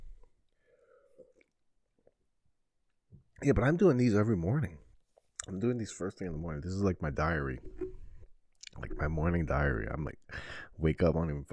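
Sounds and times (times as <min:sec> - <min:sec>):
speech: 0:03.4 - 0:04.8, 0:05.5 - 0:07.8, 0:08.8 - 0:11.5
person gulping down water: 0:07.6 - 0:09.2.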